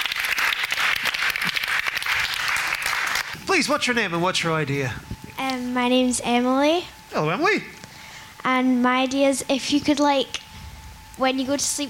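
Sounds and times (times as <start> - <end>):
audience applause: 0.0 - 3.4
speech: 3.6 - 7.8, 8.4 - 10.4, 11.2 - 11.8.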